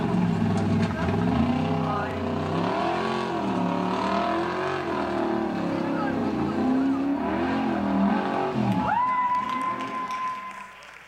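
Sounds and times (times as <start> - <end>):
four-wheel drive vehicle engine revving climbing a steep cliff: 0.0 - 10.1
crowd noise: 0.0 - 11.0
people shouting: 8.5 - 10.6.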